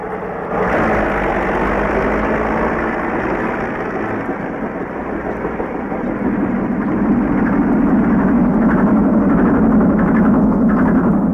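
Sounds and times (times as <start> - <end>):
heavy tractor engine idling: 0.0 - 11.3.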